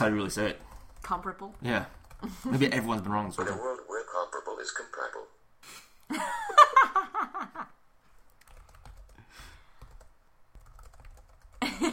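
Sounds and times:
speech: 0:00.0 - 0:06.9
person giggling: 0:06.0 - 0:07.7, 0:11.6 - 0:11.9
computer keyboard typing clicks: 0:08.3 - 0:09.2, 0:09.8 - 0:11.6.

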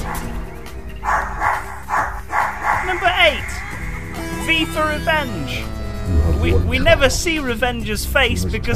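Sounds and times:
dog giving short high-pitched barks: 0:00.0 - 0:03.7
speech: 0:04.5 - 0:08.7.

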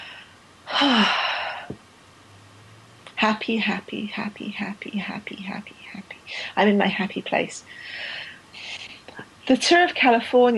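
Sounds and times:
long deep calming breath: 0:00.0 - 0:01.7, 0:07.7 - 0:08.5
speech: 0:03.2 - 0:08.2, 0:09.5 - 0:10.5.

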